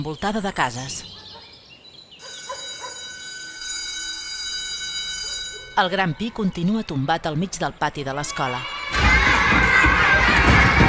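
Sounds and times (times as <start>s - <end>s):
speech: 0.0s - 1.2s, 5.8s - 9.7s
crowd of children shouting and yelling in a schoolyard: 8.3s - 10.8s.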